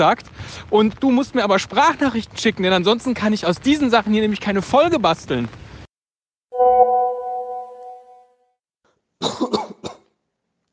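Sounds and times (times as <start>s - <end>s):
speech: 0.0s - 5.6s
sustained ringing tone: 6.6s - 8.4s
coughing: 9.2s - 10.1s.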